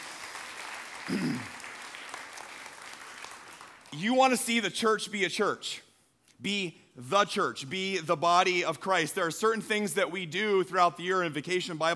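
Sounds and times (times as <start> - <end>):
church audience clapping: 0.0 - 4.4
speech: 1.1 - 1.6, 4.0 - 11.9.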